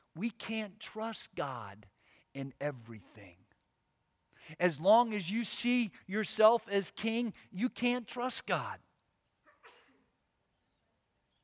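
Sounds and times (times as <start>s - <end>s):
speech: 0.2s - 3.4s, 4.4s - 8.9s
sneeze: 9.4s - 10.2s.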